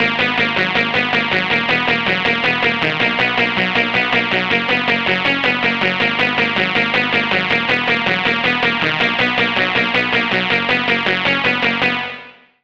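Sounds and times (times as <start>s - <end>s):
synthesizer lead: 0.0s - 12.4s.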